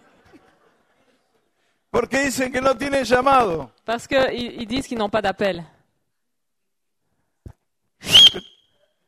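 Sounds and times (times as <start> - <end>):
speech: 2.0 - 5.7
person whistling sharply to call someone: 8.0 - 8.7.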